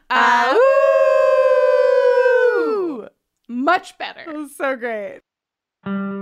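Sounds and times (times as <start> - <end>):
group of people howling together: 0.1 - 3.1
speech: 3.7 - 6.0.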